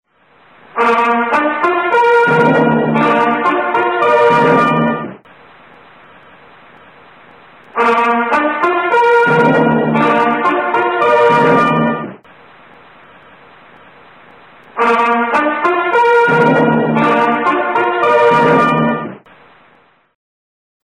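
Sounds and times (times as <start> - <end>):
brass section playing an interval signal: 0.7 - 5.2, 7.7 - 12.2, 14.8 - 19.2.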